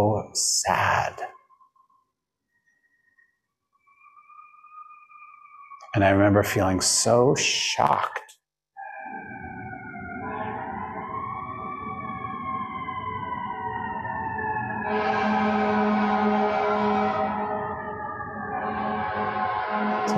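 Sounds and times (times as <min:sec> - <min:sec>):
speech: 0:00.2 - 0:01.4, 0:06.0 - 0:08.2
emergency vehicle siren wailing through the city: 0:03.8 - 0:06.7, 0:08.8 - 0:20.1.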